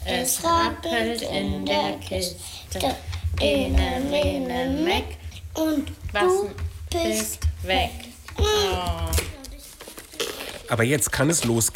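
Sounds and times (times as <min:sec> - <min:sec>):
faint paper rustling: 0:00.1 - 0:11.7
speech: 0:00.2 - 0:09.3, 0:10.7 - 0:11.7
wrapping paper crinkling and tearing off a gift: 0:09.4 - 0:11.7.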